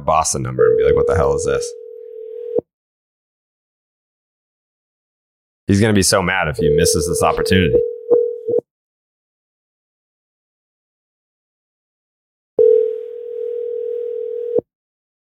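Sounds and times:
speech: 0.0 - 1.8, 5.7 - 7.9
outgoing phone call ringback tone: 0.6 - 2.6, 6.6 - 8.6, 12.6 - 14.7.

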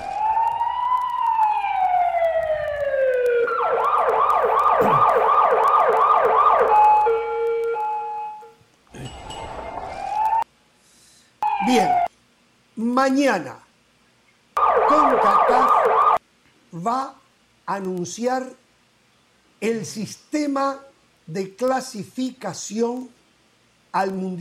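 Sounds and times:
emergency siren wailing and yelping: 0.0 - 8.6, 9.5 - 10.4, 11.4 - 12.1, 14.6 - 16.2
speech: 13.1 - 13.6, 17.7 - 18.6, 19.6 - 23.2, 23.9 - 24.3.

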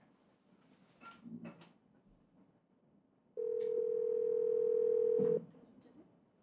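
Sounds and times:
telephone ringback tone while placing a call: 3.4 - 5.4.

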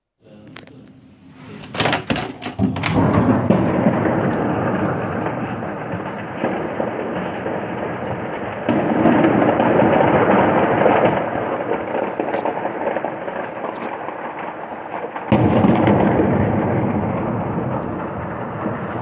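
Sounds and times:
distant explosions in a city: 1.8 - 19.0.

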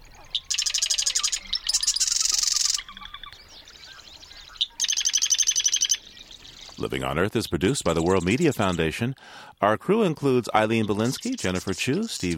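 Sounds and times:
Marsh wren singing buzzy rattling trills atop a cattail in a North Dakota wetland: 0.0 - 9.0, 10.3 - 12.3
speech: 6.8 - 12.3.

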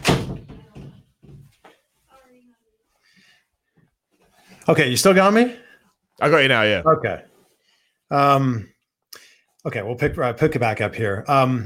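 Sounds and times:
door swinging shut with a heavy thud: 0.0 - 1.5
soft knocks and rattles: 0.0 - 1.9
speech: 4.7 - 7.3, 8.1 - 8.7, 9.6 - 11.6.

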